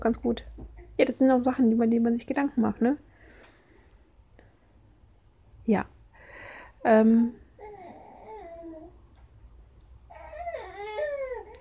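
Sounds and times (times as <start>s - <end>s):
speech: 0.0s - 3.4s, 5.7s - 6.0s, 6.8s - 7.4s
baby girl fussing and whining before sleep: 7.3s - 9.0s, 10.1s - 11.5s.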